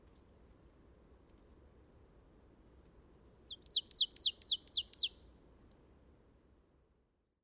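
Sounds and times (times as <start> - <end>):
Poecile palustris marsh tit calling: 3.5 - 5.1.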